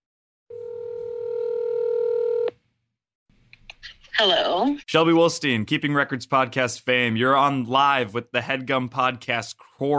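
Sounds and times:
telephone line tone as a call goes out: 0.5 - 2.5
speech: 3.8 - 9.9.

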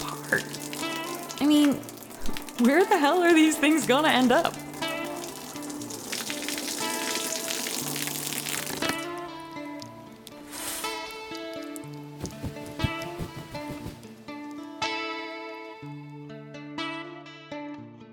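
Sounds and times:
shower water running: 0.0 - 9.0
speech: 0.3 - 0.6, 1.4 - 4.6.

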